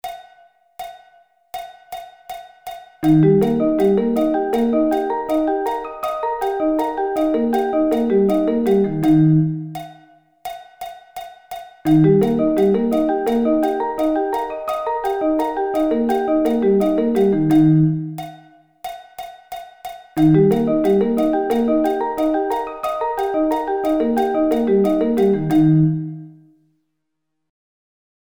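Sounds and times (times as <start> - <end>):
E-flat arpeggio inversions: 3.0 - 9.8, 11.9 - 18.2, 20.2 - 26.4.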